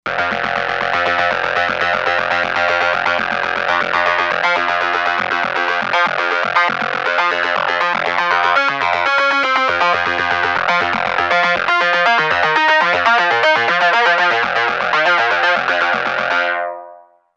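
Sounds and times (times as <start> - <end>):
lo-fi lead synth: 0.1 - 17.2.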